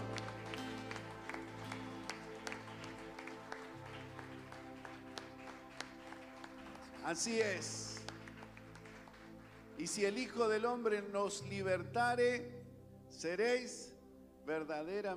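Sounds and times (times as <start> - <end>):
audience applauding: 0.0 - 10.4
sustained music or organ tones: 0.0 - 15.1
speech: 7.1 - 7.9, 9.8 - 13.9, 14.5 - 15.1.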